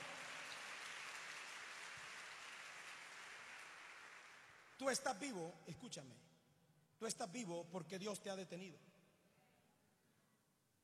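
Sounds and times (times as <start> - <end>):
large crowd applauding: 0.0 - 5.1
speech: 4.8 - 6.3, 7.0 - 8.9.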